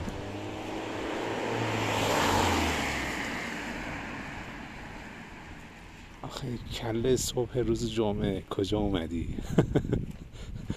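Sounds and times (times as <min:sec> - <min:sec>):
car speeding past with engine and tire roar: 0:00.0 - 0:06.0
speech: 0:06.3 - 0:10.7
laughter: 0:09.4 - 0:10.7.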